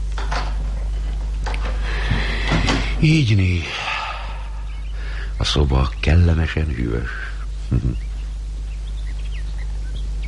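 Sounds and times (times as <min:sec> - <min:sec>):
quiet room hum: 0:00.0 - 0:10.2
speech: 0:03.0 - 0:03.9, 0:05.4 - 0:08.0
faint bird chirps: 0:03.0 - 0:10.2.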